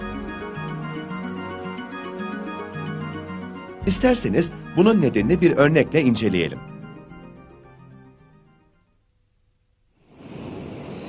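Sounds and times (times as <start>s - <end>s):
sustained music notes: 0.0s - 8.9s
speech: 3.9s - 6.7s.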